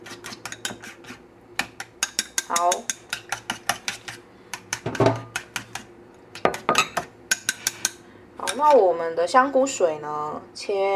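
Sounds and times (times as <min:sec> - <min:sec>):
utensil clinking against a bowl while stirring mushrooms into beaten egg: 0:00.2 - 0:08.8
speech: 0:02.5 - 0:03.0, 0:08.6 - 0:10.9.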